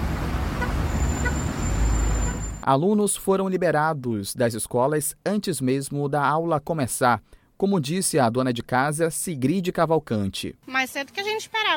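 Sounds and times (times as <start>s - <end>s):
street traffic roar of engines and road noise on a city avenue: 0.0s - 2.7s
car horn toots: 0.6s - 2.6s
speech: 2.7s - 11.7s.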